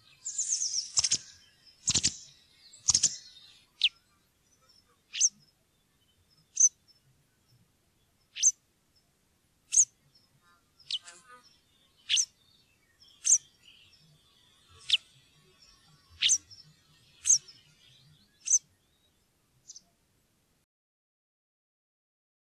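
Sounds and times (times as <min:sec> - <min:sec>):
white wagtail twittering and chirping: 0:00.0 - 0:04.0, 0:04.6 - 0:05.5, 0:06.5 - 0:06.8, 0:08.3 - 0:08.6, 0:09.7 - 0:09.9, 0:10.8 - 0:11.1, 0:12.0 - 0:12.3, 0:13.0 - 0:18.7.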